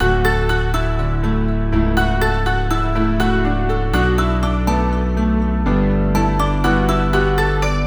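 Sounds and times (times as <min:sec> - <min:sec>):
music in D major at 122 BPM: 0:00.0 - 0:07.8.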